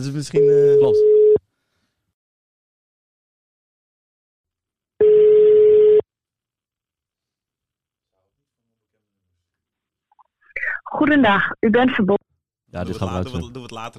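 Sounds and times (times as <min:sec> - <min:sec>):
speech: 0:00.0 - 0:01.2, 0:11.0 - 0:13.9
phone line call tone beeps: 0:00.4 - 0:01.4, 0:05.0 - 0:06.0.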